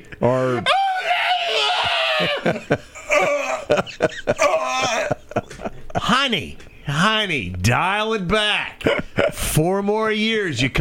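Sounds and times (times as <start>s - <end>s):
speech: 0.2s - 1.1s, 2.2s - 3.3s, 3.9s - 5.1s, 6.2s - 10.7s
woman screaming in anguish on a sidewalk: 0.6s - 3.7s, 4.3s - 5.2s
laughter: 0.7s - 6.2s, 8.8s - 9.6s.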